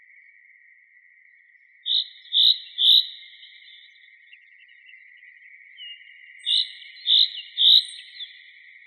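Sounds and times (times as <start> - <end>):
Fringilla coelebs common chaffinch short bright calls: 1.9 - 3.9, 5.8 - 8.5.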